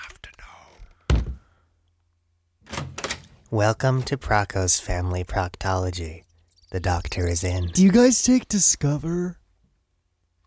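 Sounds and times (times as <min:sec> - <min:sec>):
door shutting with a heavy thunk: 0:02.6 - 0:04.2
speech: 0:03.5 - 0:09.4.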